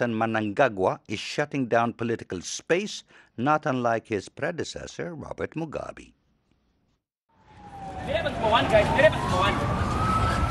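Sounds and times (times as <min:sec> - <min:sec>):
speech: 0:00.0 - 0:06.2, 0:08.1 - 0:09.9
police siren wailing: 0:07.3 - 0:10.4
traffic rumble: 0:07.4 - 0:10.4.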